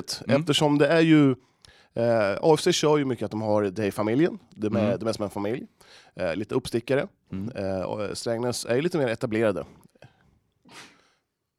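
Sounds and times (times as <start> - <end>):
speech: 0.0 - 9.9
single sharp sneeze: 10.7 - 11.1.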